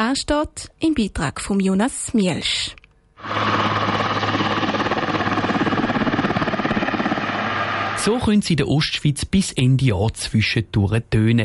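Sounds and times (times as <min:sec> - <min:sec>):
speech: 0:00.0 - 0:03.6, 0:08.0 - 0:11.4
Swiss Army helicopter rotor thudding during low-level training flight in eastern Switzerland: 0:03.2 - 0:08.0.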